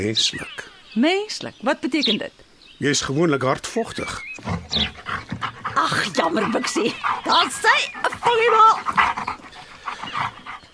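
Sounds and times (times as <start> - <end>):
speech: 0.0 - 9.2
dog panting: 4.4 - 10.7.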